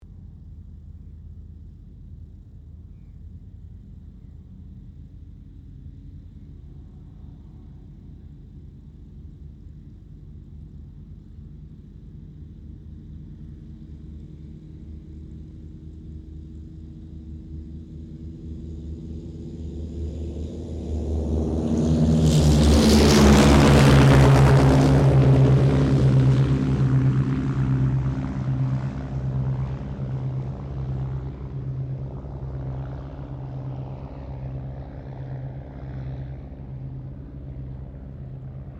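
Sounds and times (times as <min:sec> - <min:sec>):
de Havilland DHA-3 Drover tri-engine aircraft taking off: 0:00.0 - 0:38.7.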